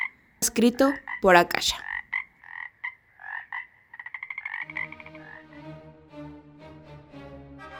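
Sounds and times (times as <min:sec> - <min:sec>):
frog croaking trill at night: 0:00.0 - 0:05.7
speech: 0:00.4 - 0:01.9.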